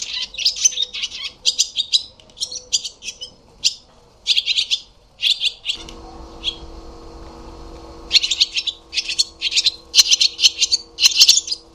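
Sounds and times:
barn swallow twittering: 0.0 - 6.8, 7.9 - 11.7
faint low background noise: 0.0 - 8.3.

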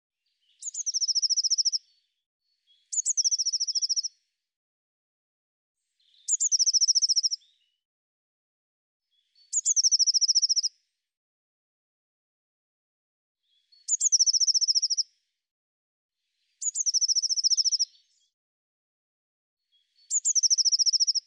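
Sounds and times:
Eurasian blue tit song with ringing trill: 0.3 - 4.2, 5.9 - 7.8, 9.1 - 10.8, 13.4 - 15.3, 16.2 - 18.4, 19.7 - 21.2.

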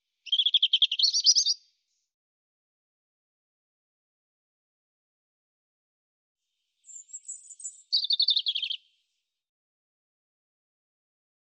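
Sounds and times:
European robin song: 0.1 - 2.1, 6.7 - 9.0.

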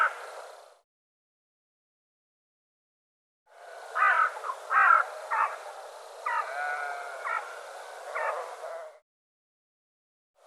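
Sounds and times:
bird cawing harshly: 3.9 - 5.6, 6.3 - 7.6.

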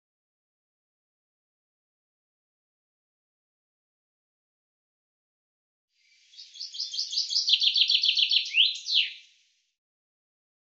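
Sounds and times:
common chaffinch song: 6.0 - 9.4.

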